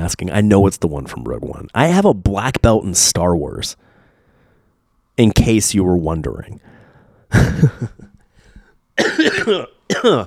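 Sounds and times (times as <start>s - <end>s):
speech: 0.0s - 3.8s, 5.2s - 8.0s, 9.0s - 10.2s
harsh raspy coughs: 7.3s - 8.1s, 9.0s - 10.2s.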